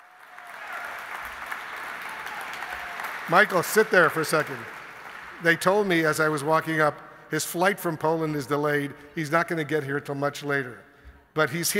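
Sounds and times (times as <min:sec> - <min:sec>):
large audience applause: 0:00.0 - 0:06.4
speech: 0:03.3 - 0:04.8, 0:05.4 - 0:11.7.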